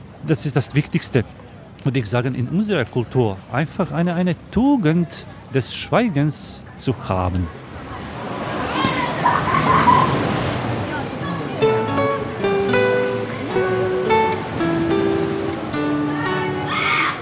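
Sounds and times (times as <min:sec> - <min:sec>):
speech: 0:00.3 - 0:07.6
sea water sloshing and splashing waves: 0:01.2 - 0:17.2
children shrieking and shouting excitedly near the sea water: 0:08.4 - 0:10.4, 0:16.0 - 0:17.2.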